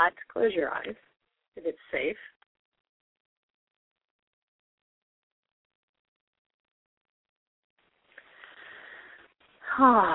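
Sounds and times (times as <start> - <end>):
speech: 0.0 - 2.4, 9.7 - 10.1
slow deep breath drawn in through the nose: 8.2 - 9.4.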